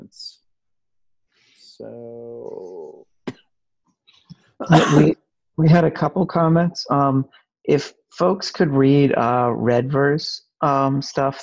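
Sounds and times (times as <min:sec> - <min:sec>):
speech: 0:00.1 - 0:00.4, 0:01.8 - 0:02.4, 0:04.6 - 0:11.4
faint vocal noises: 0:01.6 - 0:03.0
person coughing: 0:04.6 - 0:05.2.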